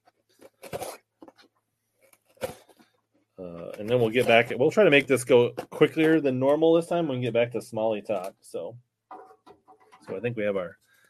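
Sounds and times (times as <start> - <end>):
scissors cutting packing tape on a box: 0.4 - 1.0
speech: 3.4 - 8.9, 10.1 - 10.8.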